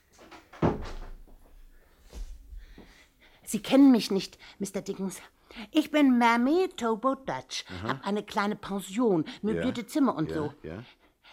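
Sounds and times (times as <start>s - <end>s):
door shutting: 0.1s - 1.3s
speech: 3.5s - 11.0s.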